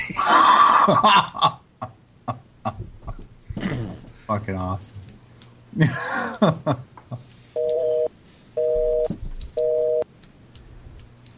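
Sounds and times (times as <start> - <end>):
speech: 0.8 - 1.5, 4.3 - 5.0, 5.8 - 6.8
telephone off-hook tone from a phone pulled off the hook: 7.6 - 10.0.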